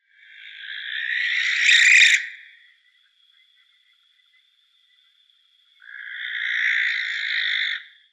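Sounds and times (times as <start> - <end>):
barn owl Tyto alba: 0.1 - 2.6, 5.8 - 8.0.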